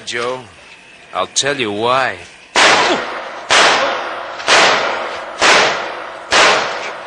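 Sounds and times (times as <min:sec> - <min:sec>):
speech: 0:00.1 - 0:03.2
sharp gunshots: 0:02.5 - 0:07.0.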